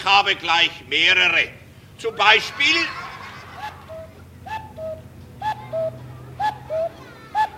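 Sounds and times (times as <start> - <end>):
speech: 0.0 - 3.0
laughter: 2.1 - 4.2
owl hooting in short paired calls: 3.4 - 7.5.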